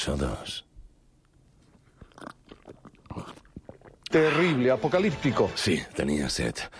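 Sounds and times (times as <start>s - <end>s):
speech: 0.0s - 0.7s, 4.1s - 6.7s
person intensely slurping drinking water: 1.8s - 4.1s.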